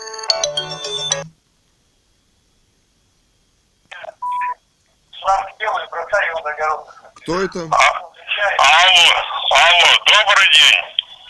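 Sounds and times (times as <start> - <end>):
melodic phone ringtone with a bass line: 0.0 - 1.3
speech: 0.8 - 1.4, 6.8 - 8.0, 8.6 - 11.0.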